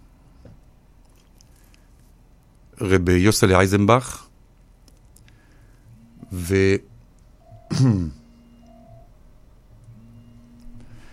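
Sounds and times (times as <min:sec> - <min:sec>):
speech: 0:02.8 - 0:04.3, 0:06.3 - 0:06.9, 0:07.8 - 0:08.2
phone electronic tones signalling an incoming call: 0:05.9 - 0:09.2, 0:09.8 - 0:11.0.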